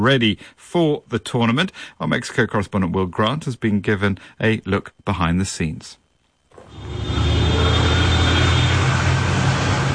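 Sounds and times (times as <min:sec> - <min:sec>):
speech: 0:00.0 - 0:06.0
car engines rumbling in city road traffic: 0:06.6 - 0:09.9.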